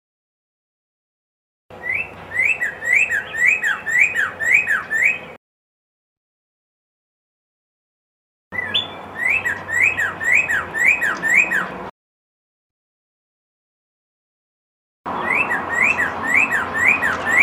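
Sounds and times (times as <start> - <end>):
red-crested cardinal song of sweet swooping whistles: 1.8 - 5.4, 8.5 - 11.8, 15.2 - 17.4.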